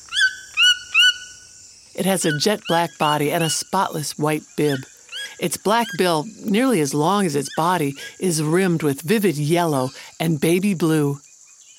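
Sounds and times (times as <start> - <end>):
Cuvier's toucan yelping: 0.0 - 8.4
constant high-pitched hiss: 0.0 - 11.7
speech: 2.0 - 11.2.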